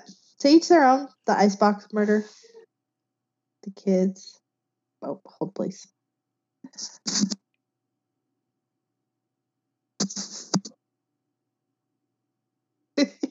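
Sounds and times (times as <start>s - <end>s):
speech: 0.4s - 2.5s, 3.6s - 4.4s, 5.0s - 6.0s, 6.7s - 7.4s, 10.1s - 10.4s
person sneezing: 10.0s - 10.7s.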